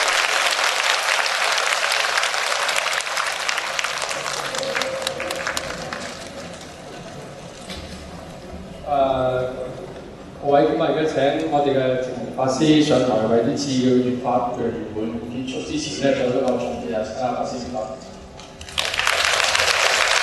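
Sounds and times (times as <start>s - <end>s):
large audience applauding: 0.0s - 7.6s, 18.6s - 20.2s
speech: 10.7s - 18.1s.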